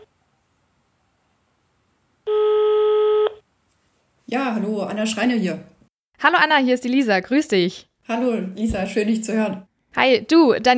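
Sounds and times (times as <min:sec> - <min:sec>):
outgoing telephone call ringback tones: 0:02.3 - 0:03.4
speech: 0:04.3 - 0:10.7.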